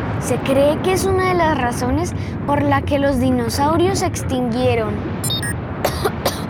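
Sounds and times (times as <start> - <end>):
speech: 0.2 - 5.4
high-pitched tones: 5.2 - 5.6
harsh coughs from volcanic dust: 5.8 - 6.4.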